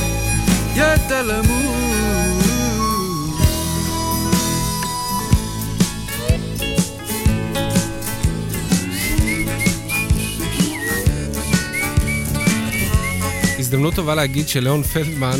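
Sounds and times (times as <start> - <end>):
full band backing with steady drums and instruments: 0.0 - 15.3
whistled melody over a full band: 0.0 - 15.3
speech: 0.8 - 1.6, 13.8 - 15.3.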